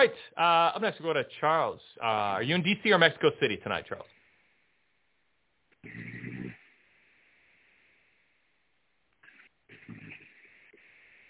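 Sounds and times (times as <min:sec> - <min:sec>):
speech: 0:00.0 - 0:04.2
snoring over a muffled tinny phone line: 0:05.8 - 0:08.0, 0:09.2 - 0:11.2.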